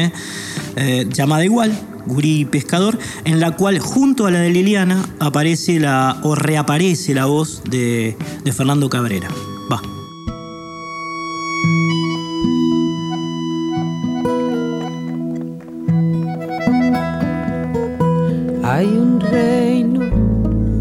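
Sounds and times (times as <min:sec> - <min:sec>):
speech: 0:00.0 - 0:10.0, 0:18.7 - 0:20.1
instrumental song intro with sustained melodic notes: 0:08.2 - 0:20.7.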